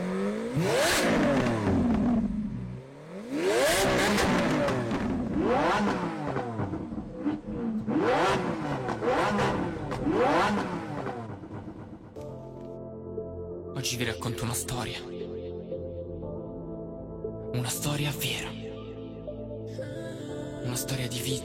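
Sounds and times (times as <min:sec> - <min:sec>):
car engine accelerating through the gears: 0:00.0 - 0:12.4
speech: 0:00.6 - 0:01.2, 0:13.8 - 0:15.2, 0:17.6 - 0:18.6, 0:20.8 - 0:21.4.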